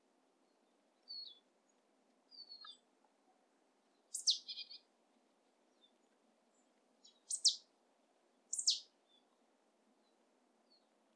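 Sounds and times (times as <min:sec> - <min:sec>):
Marsh tit Poecile palustris sharp high double-note calls: 0:04.1 - 0:04.6, 0:07.3 - 0:07.6, 0:08.5 - 0:08.8.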